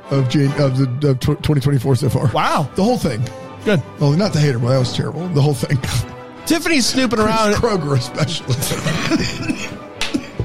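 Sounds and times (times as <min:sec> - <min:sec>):
speech: 0:00.1 - 0:09.7
laughter: 0:07.0 - 0:10.4
loud coughing fit with rough, harsh coughs: 0:08.7 - 0:10.4.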